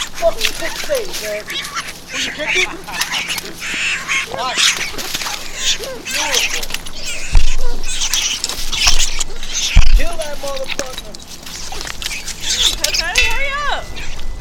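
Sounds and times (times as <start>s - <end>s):
bird honking and squawking: 0.0s - 14.3s
indistinct voices: 0.0s - 14.3s
rustling: 0.0s - 14.3s
speech: 0.2s - 7.2s, 10.0s - 11.4s, 12.5s - 14.0s
laughter: 1.4s - 7.9s
thumps: 6.6s - 13.3s.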